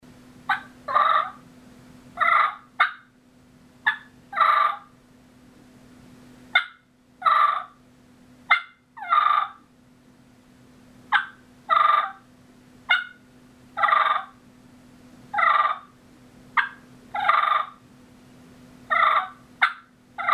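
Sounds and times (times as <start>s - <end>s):
turkey clucking: 0.5s - 1.4s, 2.2s - 3.1s, 3.8s - 4.9s, 6.6s - 7.8s, 8.5s - 9.6s, 11.1s - 12.2s, 12.9s - 13.2s, 13.8s - 14.4s, 15.4s - 15.9s, 16.6s - 17.8s, 18.9s - 20.3s.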